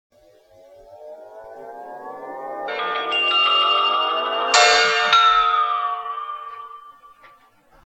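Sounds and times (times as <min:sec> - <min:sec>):
big bell: 0:02.0 - 0:07.6.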